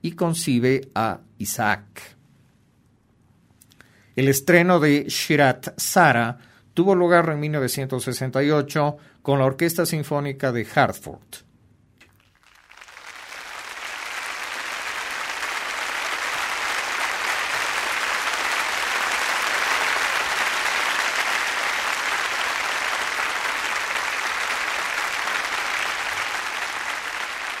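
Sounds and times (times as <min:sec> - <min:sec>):
speech: 0:00.0 - 0:02.2, 0:04.2 - 0:11.5
large concert audience applause in a concert hall: 0:12.1 - 0:27.5.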